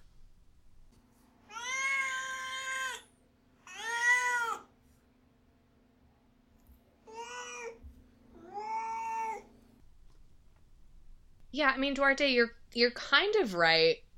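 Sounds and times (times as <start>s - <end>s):
faint steady hum: 0.0s - 14.1s
cat meowing: 1.5s - 3.0s, 7.1s - 7.8s, 8.4s - 9.5s
speech: 11.6s - 14.0s.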